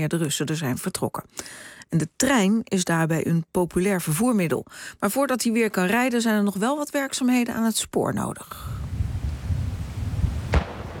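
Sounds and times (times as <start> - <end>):
speech: 0.0 - 8.8
low rumbling: 8.8 - 10.9
landmine detonated beside a railway track during mine clearance: 9.0 - 10.9.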